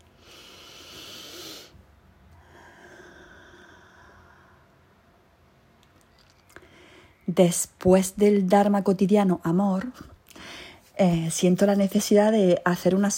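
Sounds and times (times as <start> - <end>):
deep breath inhale and exhale: 0.0 - 5.0, 6.6 - 7.2, 10.3 - 10.9
speech: 7.3 - 10.1, 11.0 - 13.1.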